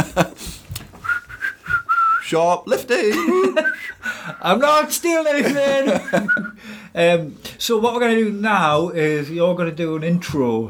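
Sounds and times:
laughter: 0:00.0 - 0:00.6, 0:03.0 - 0:06.6
person whistling a short three-note tune: 0:01.0 - 0:02.2, 0:03.6 - 0:04.0, 0:06.0 - 0:06.6
speech: 0:02.3 - 0:10.6.

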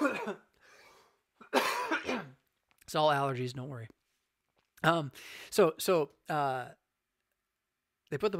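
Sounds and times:
harsh coughs: 0:00.0 - 0:00.5, 0:01.4 - 0:02.4
speech: 0:02.9 - 0:04.0, 0:04.8 - 0:06.8, 0:08.1 - 0:08.3.

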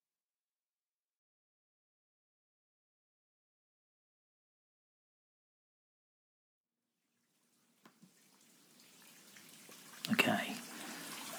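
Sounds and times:
steaming hot water running into a bubble bath in a bathtub: 0:07.3 - 0:11.3
water splashing in a bathtub: 0:07.9 - 0:11.3.

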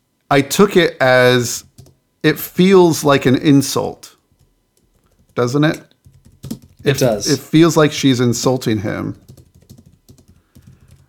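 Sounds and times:
speech: 0:00.3 - 0:04.1, 0:05.4 - 0:05.9, 0:06.8 - 0:09.3
rapid typing on a computer keyboard: 0:01.6 - 0:02.0, 0:04.3 - 0:06.9, 0:09.2 - 0:11.0.

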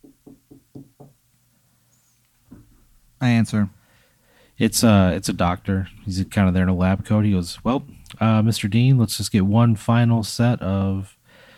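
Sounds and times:
sharp knocks on a door: 0:00.0 - 0:01.2
speech: 0:03.2 - 0:03.8, 0:04.6 - 0:11.2.

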